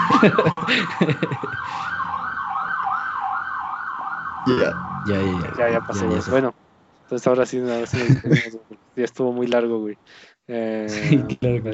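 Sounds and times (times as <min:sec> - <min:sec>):
laughter: 0:00.0 - 0:02.0, 0:04.5 - 0:06.4, 0:07.5 - 0:08.6, 0:10.9 - 0:11.7
police patrol car siren wailing as the car passes: 0:00.0 - 0:06.5
speech: 0:00.2 - 0:01.8, 0:04.5 - 0:11.7.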